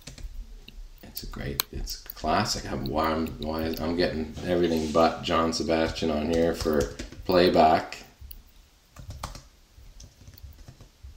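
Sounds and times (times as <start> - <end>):
typing on a computer keyboard: 0.0 - 0.3, 6.3 - 7.2, 9.0 - 10.9
speech: 1.2 - 8.0.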